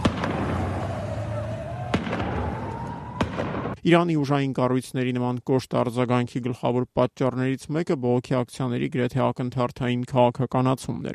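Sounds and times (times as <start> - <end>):
gunfire from security forces on a rooftop aimed at protesters: 0.0 - 3.8
speech: 3.8 - 11.1.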